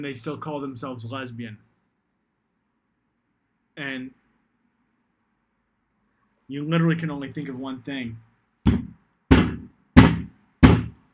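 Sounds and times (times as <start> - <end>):
speech: 0.0 - 1.7, 3.8 - 4.2, 6.5 - 8.3
head banging on a wooden table: 8.7 - 11.0.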